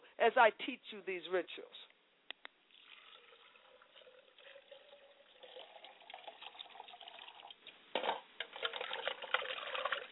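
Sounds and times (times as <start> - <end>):
speech: 0.2 - 1.9
tap water running: 2.7 - 7.7, 8.4 - 10.1.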